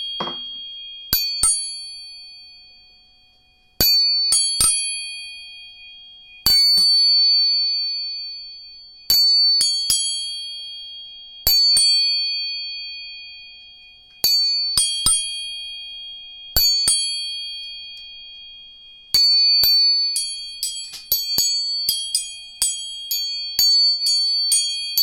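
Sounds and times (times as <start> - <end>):
tuning forks struck and ringing: 0.0 - 25.0.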